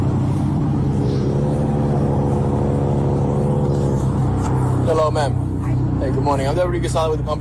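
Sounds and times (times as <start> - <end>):
car engine idling at a traffic stop in Lake Worth: 0.0 - 7.3
speech: 4.9 - 5.4, 6.0 - 7.3.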